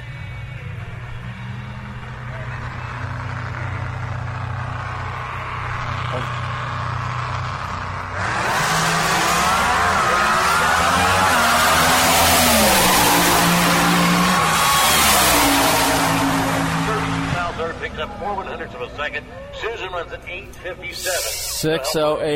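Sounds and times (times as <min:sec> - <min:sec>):
crowd noise: 0:00.0 - 0:22.3
drag racing car launching down the track: 0:07.7 - 0:17.9.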